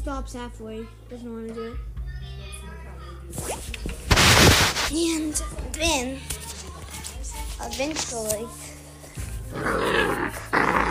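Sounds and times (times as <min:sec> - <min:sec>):
speech: 0:00.0 - 0:04.0, 0:04.9 - 0:06.4, 0:07.6 - 0:08.7, 0:09.5 - 0:10.5
dog growling: 0:09.5 - 0:10.8.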